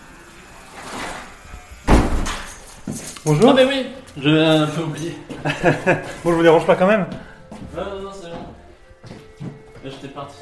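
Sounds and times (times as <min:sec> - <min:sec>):
door pushed open with sharp loud thud: 0:01.8 - 0:02.6
speech: 0:03.2 - 0:08.2, 0:09.9 - 0:10.3
laughter: 0:05.2 - 0:06.7.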